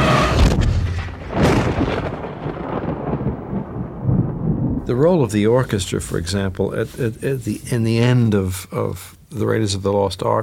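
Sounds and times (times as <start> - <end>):
deep rumbling thunder: 0.0 - 6.8
speech: 4.9 - 10.4.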